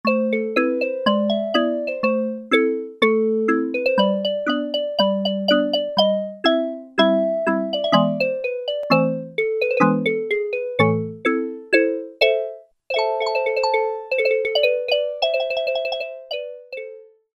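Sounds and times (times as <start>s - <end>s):
marimba: 0.1s - 17.0s.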